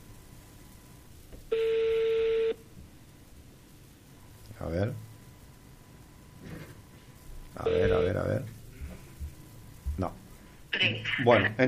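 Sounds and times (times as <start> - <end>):
telephone tone as a call is being placed: 1.5 - 2.6, 7.6 - 8.2
speech: 4.7 - 5.1, 10.8 - 11.6.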